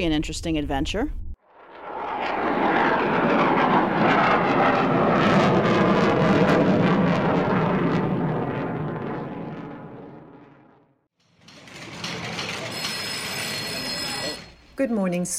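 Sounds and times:
speech: 0.0 - 1.2, 14.8 - 15.3
aircraft engine roaring on takeoff from runway 9: 1.5 - 11.0.

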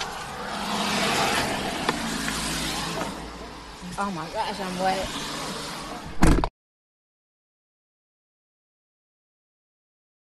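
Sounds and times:
broadband road-like noise: 0.0 - 6.5
steady engine rumble: 0.0 - 6.5
speech: 4.0 - 5.4.

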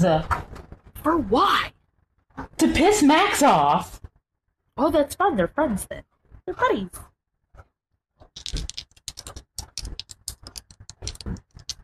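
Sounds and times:
speech: 0.0 - 0.4, 1.0 - 1.7, 2.4 - 4.0, 4.8 - 7.1
plastic dice dropped and clattering: 8.3 - 11.8.

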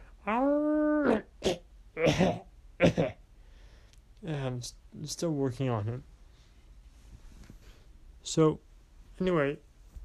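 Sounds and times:
human voice imitating a dog howl: 0.2 - 1.3
speech: 4.6 - 6.2, 8.3 - 9.7.

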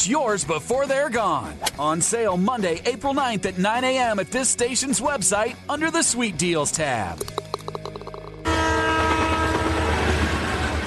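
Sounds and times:
speech: 0.0 - 7.4
rhythmic clanking: 7.2 - 8.5
train horn blaring: 8.4 - 10.8.

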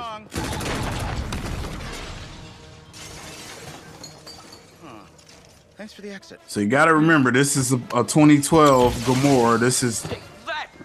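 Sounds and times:
large pane of laser-proof glass shattering: 1.6 - 5.6, 8.6 - 10.2
falling glass shards tinkling: 3.0 - 5.8
speech: 5.8 - 10.4.

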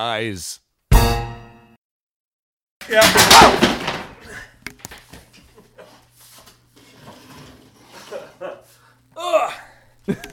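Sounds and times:
speech: 0.0 - 1.2, 2.9 - 3.8
office chair collapsing under a person: 2.8 - 4.4, 6.8 - 8.4
person groaning: 9.2 - 9.8.

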